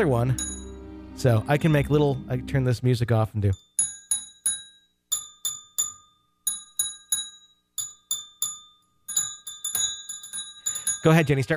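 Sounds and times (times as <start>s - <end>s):
speech: 0.0s - 0.5s, 1.2s - 3.6s, 11.0s - 11.5s
small hand bell ringing: 3.6s - 11.5s.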